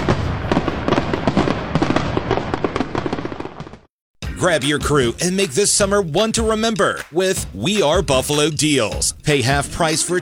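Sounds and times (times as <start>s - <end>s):
fireworks crackling and popping: 0.0s - 3.9s
speech: 4.4s - 10.2s.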